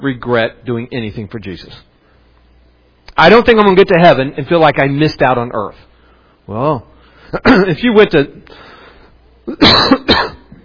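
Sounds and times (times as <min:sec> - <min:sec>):
speech: 0:00.0 - 0:01.9, 0:03.2 - 0:05.9, 0:06.5 - 0:08.7, 0:09.5 - 0:10.3
harsh coughing from someone with bad sinuses: 0:07.4 - 0:07.8, 0:09.5 - 0:10.6.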